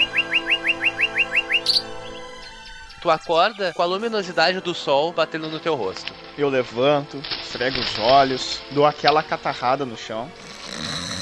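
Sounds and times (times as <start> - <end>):
birds singing at dawn: 0.0 - 4.3
speech: 3.0 - 10.9.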